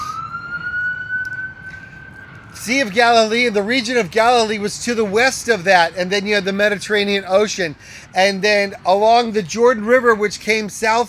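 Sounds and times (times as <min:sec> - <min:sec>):
ambulance siren wailing: 0:00.0 - 0:07.2
low rumble of traffic: 0:00.0 - 0:11.0
speech: 0:02.6 - 0:11.0.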